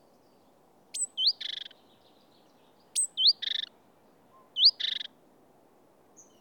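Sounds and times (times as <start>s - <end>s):
great tit Parus major calls with twisting whistles and buzzy churrs: 0.9s - 1.8s, 2.6s - 3.7s, 4.4s - 5.1s.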